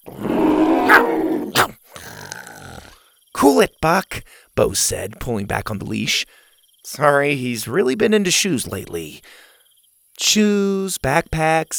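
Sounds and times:
dinosaur growling and snarling: 0.0s - 3.0s
speech: 3.4s - 9.5s, 10.2s - 11.7s.

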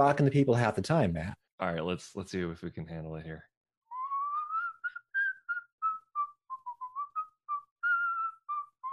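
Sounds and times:
speech: 0.0s - 3.5s
person whistling a bouncy tune, inhaled and exhaled: 3.9s - 8.9s.

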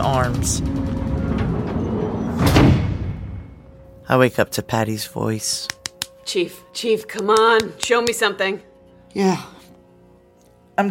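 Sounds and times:
speech: 0.1s - 1.1s, 4.1s - 9.6s
heavy engine room door closing: 0.8s - 3.4s.

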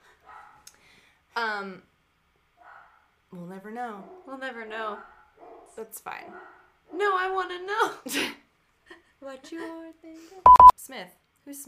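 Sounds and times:
dog barking: 0.2s - 0.7s, 2.6s - 3.1s, 5.0s - 7.0s
speech: 1.4s - 1.9s, 3.3s - 11.6s.

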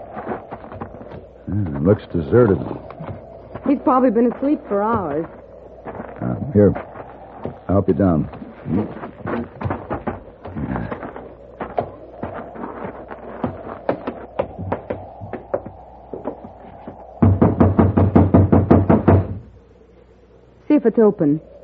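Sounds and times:
speech: 1.5s - 2.9s, 3.7s - 5.4s, 6.2s - 6.9s, 7.7s - 9.7s, 20.9s - 21.5s
knuckles knocking on a locked wooden door: 17.2s - 19.4s.

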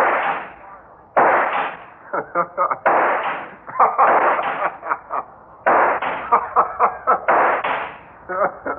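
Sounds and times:
gunshots: 0.0s - 0.6s, 1.2s - 2.0s, 2.8s - 4.8s, 5.6s - 6.3s, 7.2s - 8.0s
laughter: 2.0s - 2.9s, 3.6s - 5.4s, 6.2s - 7.3s, 8.3s - 8.7s.

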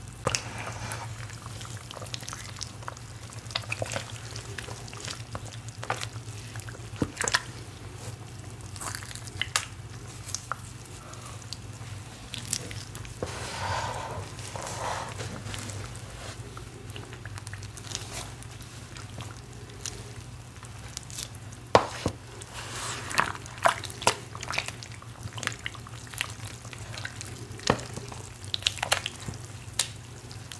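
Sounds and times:
thick matcha cornstarch paste being worked and reformed: 0.2s - 30.5s.

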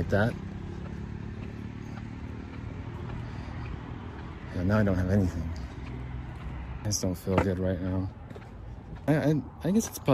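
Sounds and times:
speech: 0.0s - 0.4s, 4.6s - 5.6s, 6.8s - 8.2s, 9.0s - 10.1s
motorcycle engine rumbling in city traffic: 0.0s - 7.4s
city traffic noise: 0.0s - 10.1s.

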